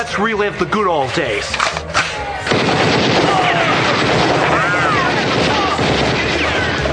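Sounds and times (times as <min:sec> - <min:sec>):
speech: 0:00.0 - 0:01.9, 0:02.5 - 0:04.7
machine-gun fire at a beach party: 0:02.5 - 0:06.9.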